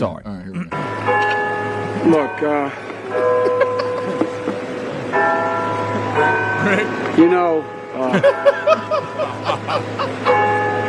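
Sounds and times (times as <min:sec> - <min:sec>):
speech: 0:00.0 - 0:00.9, 0:02.0 - 0:03.7, 0:06.7 - 0:10.5
clock tower bell ringing: 0:00.7 - 0:10.8
steady low drone: 0:00.7 - 0:10.8
laughter: 0:01.9 - 0:07.2, 0:08.0 - 0:10.7.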